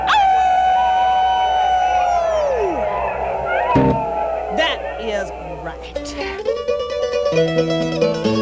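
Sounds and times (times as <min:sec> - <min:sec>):
human voices imitating a dog howling at the moon: 0:00.0 - 0:05.6
speech: 0:07.3 - 0:08.3.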